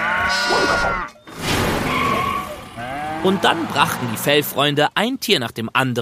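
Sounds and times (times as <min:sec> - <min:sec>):
sheep bleating on a farm: 0:00.0 - 0:01.2, 0:02.3 - 0:03.8
speech: 0:03.2 - 0:06.0.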